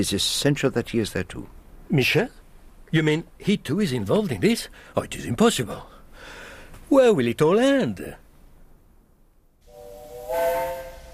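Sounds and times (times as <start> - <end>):
speech: 0.0 - 8.2
steam locomotive whistle: 9.6 - 11.1.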